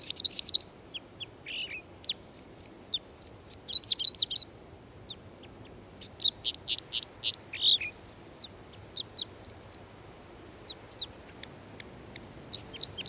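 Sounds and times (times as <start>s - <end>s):
Red crossbill giving clipped high chip calls: 0.0s - 9.9s, 10.6s - 13.0s
faint background hiss: 0.0s - 13.0s.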